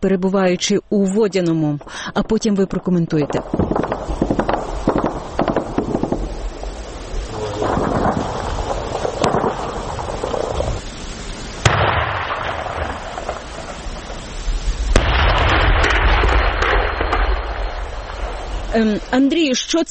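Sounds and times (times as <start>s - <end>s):
speech: 0.0s - 5.0s, 18.8s - 19.8s
heavy booming battle explosions with roaring rumbles: 1.7s - 19.4s
rapid battle gunfire in dense bursts: 3.4s - 6.3s.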